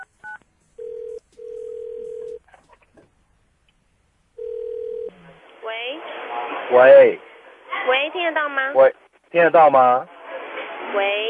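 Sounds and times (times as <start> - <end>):
telephone dialing tones while placing a call: 0.0 - 2.4, 4.4 - 5.2
telephone keypad beeps: 0.0 - 2.4
faint noise: 0.0 - 11.2
speech: 6.7 - 7.3, 7.9 - 10.1, 10.9 - 11.2.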